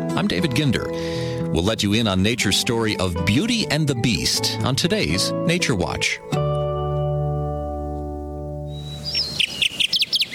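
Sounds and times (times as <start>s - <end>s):
speech: 0.2s - 6.4s
Kirtland's warbler singing: 7.6s - 10.3s.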